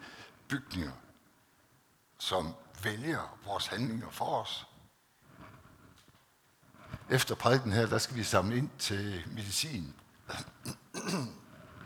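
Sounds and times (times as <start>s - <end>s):
speech: 0.5s - 1.1s, 2.2s - 4.7s, 7.1s - 11.4s
person with a slight cough clearing throat: 10.6s - 11.4s.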